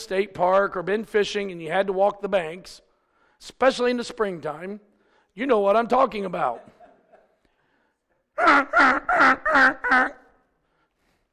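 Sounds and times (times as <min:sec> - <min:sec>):
speech: 0:00.0 - 0:02.8, 0:03.4 - 0:06.8, 0:08.4 - 0:10.2
laughter: 0:06.4 - 0:07.5
goose honking: 0:08.4 - 0:10.3.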